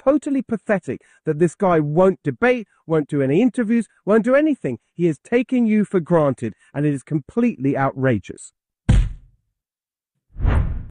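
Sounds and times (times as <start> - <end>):
speech: 0.0 - 8.6
airy whooshes: 10.4 - 10.8.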